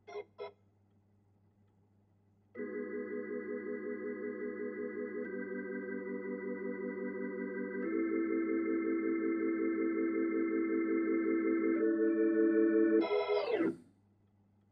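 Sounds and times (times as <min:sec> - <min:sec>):
Hammond electric organ: 0:00.0 - 0:00.5, 0:02.6 - 0:13.8.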